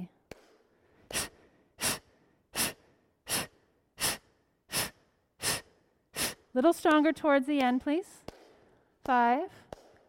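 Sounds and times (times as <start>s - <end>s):
person breathing in with the belly relaxed: 0.7s - 6.5s
speech: 6.6s - 8.3s, 9.0s - 9.6s.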